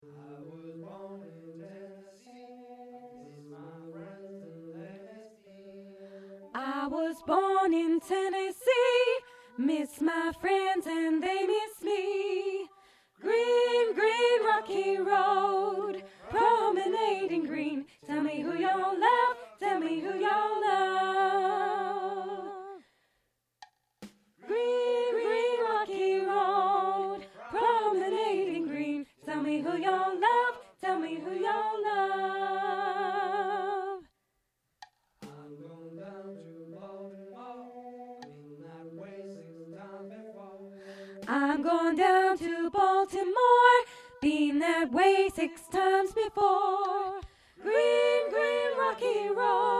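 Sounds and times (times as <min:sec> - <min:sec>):
soprano voice singing a folk song: 0:06.4 - 0:22.8, 0:24.4 - 0:34.1, 0:41.2 - 0:49.7.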